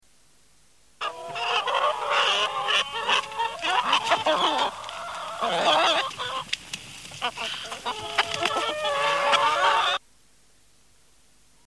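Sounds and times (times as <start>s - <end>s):
farmyard animals: 1.0s - 10.0s.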